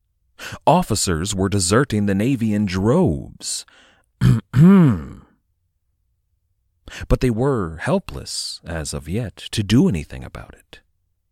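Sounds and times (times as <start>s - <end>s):
speech: 0.7s - 5.2s, 6.9s - 10.8s
person clearing throat: 4.2s - 5.4s.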